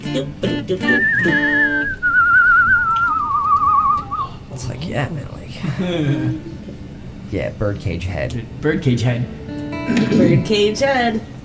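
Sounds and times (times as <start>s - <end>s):
speech: 0.1s - 2.0s, 4.6s - 6.5s, 7.3s - 11.3s
long clear whistle with trembling vibrato gliding downward in pitch: 0.8s - 4.4s
laughter: 5.5s - 6.6s.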